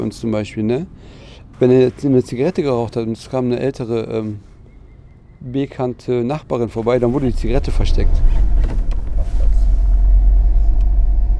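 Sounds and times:
speech: 0:00.1 - 0:04.5, 0:05.4 - 0:08.4
car engine and road rumble while driving: 0:06.7 - 0:11.3.

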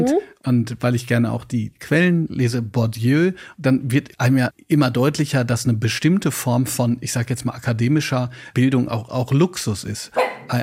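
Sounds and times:
speech: 0:00.0 - 0:10.6
dog barking: 0:10.2 - 0:10.5.

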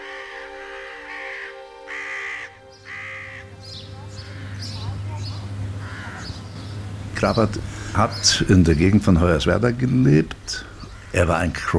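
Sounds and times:
ravens croaking: 0:00.0 - 0:11.7
speech: 0:07.2 - 0:11.7.

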